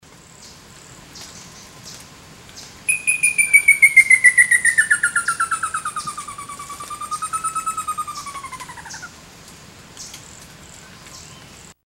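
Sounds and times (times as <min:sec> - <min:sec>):
Merulaxis ater calling: 0:02.9 - 0:09.2.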